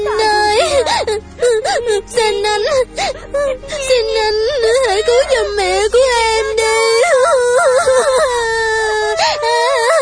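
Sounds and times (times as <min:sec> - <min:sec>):
woman crying with wailing, moaning sobs: 0:00.0 - 0:10.0.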